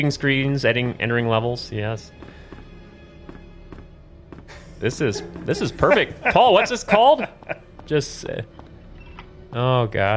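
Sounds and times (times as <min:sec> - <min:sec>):
speech: 0:00.0 - 0:02.4, 0:04.8 - 0:08.6, 0:09.5 - 0:10.1
steady dense musical background: 0:00.0 - 0:10.1
video game footstep effects: 0:00.4 - 0:09.6
laughter: 0:04.5 - 0:07.7.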